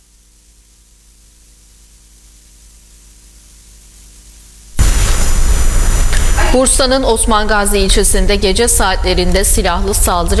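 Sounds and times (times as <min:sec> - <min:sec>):
explosion at a wedding: 0:04.8 - 0:07.5
speech: 0:06.6 - 0:10.3.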